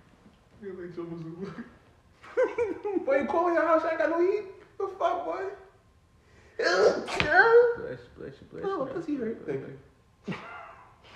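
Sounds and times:
speech: 0.6s - 5.6s, 6.6s - 10.5s
loud sneeze: 6.6s - 7.4s.

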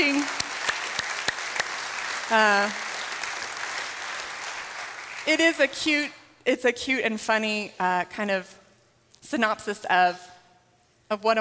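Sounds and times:
audience applauding mothers: 0.0s - 5.3s
sharp individual claps: 0.0s - 5.3s
speech: 2.3s - 2.8s, 5.3s - 8.6s, 9.2s - 10.3s, 11.1s - 11.3s.

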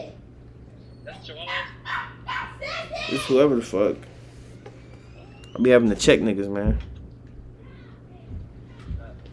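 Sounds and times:
dog barking and yelping: 1.0s - 3.1s
speech: 3.1s - 4.1s, 5.6s - 6.9s.

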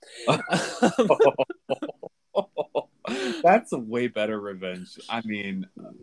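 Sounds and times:
laughter: 0.1s - 5.5s
speech: 0.2s - 1.9s, 3.2s - 5.9s
person coughing: 0.2s - 2.0s.

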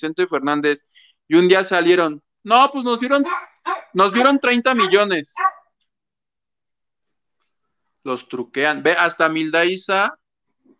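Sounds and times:
speech: 0.0s - 5.5s, 8.0s - 10.2s
dog barking: 3.2s - 5.8s.

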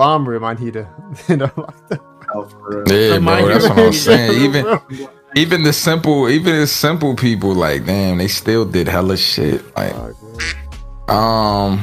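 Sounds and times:
speech: 0.0s - 11.8s
laughter: 1.0s - 5.6s
duck quack sound effect: 10.4s - 10.7s.

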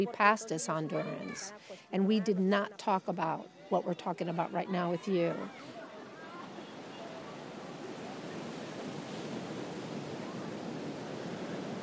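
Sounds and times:
speech: 0.0s - 5.8s
ocean surf on a beach where the Mexico-U.S. border wall runs into the ocean: 3.2s - 11.8s.

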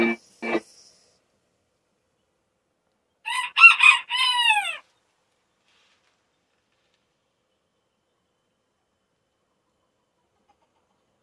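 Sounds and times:
rooster crowing: 3.3s - 4.8s.

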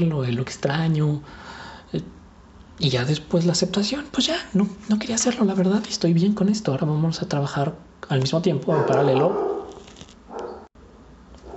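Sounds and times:
speech: 0.0s - 2.2s, 2.8s - 9.5s
dog barking: 8.7s - 10.7s.

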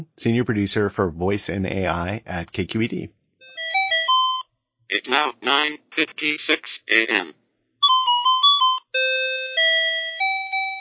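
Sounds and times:
speech: 0.0s - 3.2s, 4.9s - 7.4s
electronic alarm clock chime with warbling two-note trill: 3.4s - 4.4s, 7.8s - 10.7s.

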